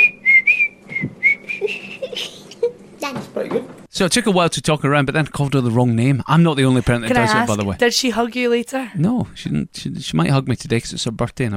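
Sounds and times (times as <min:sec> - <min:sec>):
child whistling a wavering tune: 0:00.0 - 0:02.1
speech: 0:03.4 - 0:11.5.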